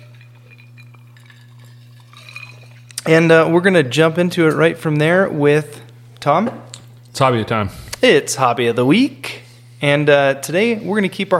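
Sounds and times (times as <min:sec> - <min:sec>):
glasses clinking in a toast: 0:00.0 - 0:03.2
steady low electrical hum: 0:00.0 - 0:11.3
speech: 0:03.1 - 0:11.3.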